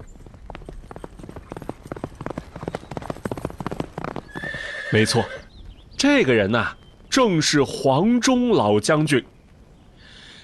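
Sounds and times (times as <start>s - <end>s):
horse hooves clip-clopping as a rider leaves a city: 0.0s - 5.8s
speech: 4.9s - 5.4s, 6.0s - 9.3s.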